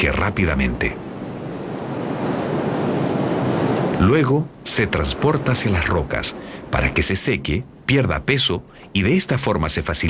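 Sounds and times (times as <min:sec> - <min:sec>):
speech: 0:00.0 - 0:01.1, 0:04.0 - 0:10.0
wind buffeting the microphone: 0:00.0 - 0:07.0
sea waves washing onto a rocky coastline: 0:00.0 - 0:09.4.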